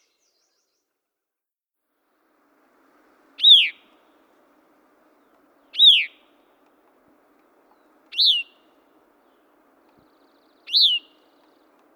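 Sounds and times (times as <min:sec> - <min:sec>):
Gray-cheeked Thrush: 0:02.5 - 0:11.9.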